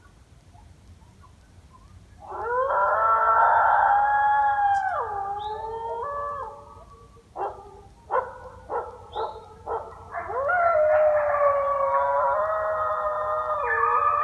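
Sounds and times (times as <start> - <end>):
coyote howling: 2.2 - 8.2, 9.1 - 14.2.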